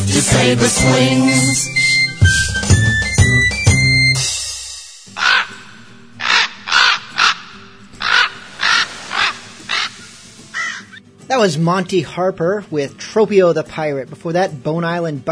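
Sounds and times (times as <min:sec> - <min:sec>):
music: 0:00.0 - 0:15.3
speech: 0:00.1 - 0:02.5, 0:11.4 - 0:15.3
raven cawing: 0:05.1 - 0:11.0.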